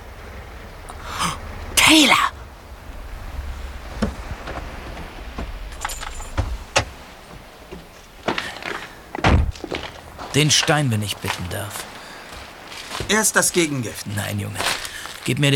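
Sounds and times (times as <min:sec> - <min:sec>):
car rolling up with low engine rumble: 0:00.0 - 0:10.3
speech: 0:01.9 - 0:02.3, 0:10.4 - 0:11.9, 0:13.1 - 0:15.5.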